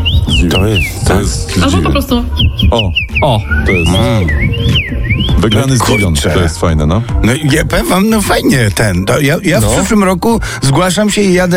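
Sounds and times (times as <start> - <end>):
common rosefinch whistled call: 0.0 - 6.6
speech: 0.4 - 11.5.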